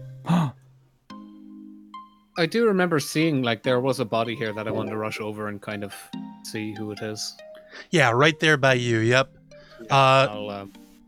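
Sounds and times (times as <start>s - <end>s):
person lying in a sewer gasping: 0.2s - 0.7s
speech: 2.4s - 10.8s.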